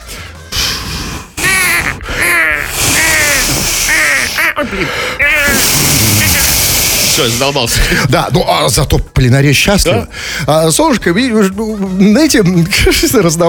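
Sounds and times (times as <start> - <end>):
laughter: 1.4 - 6.7
person loudly mimicking seagull cries: 1.4 - 6.9
speech: 4.6 - 6.2, 7.2 - 13.4.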